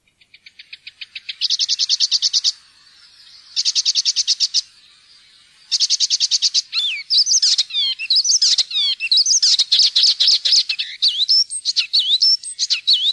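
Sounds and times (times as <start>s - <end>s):
icterine warbler song: 0.0s - 13.1s.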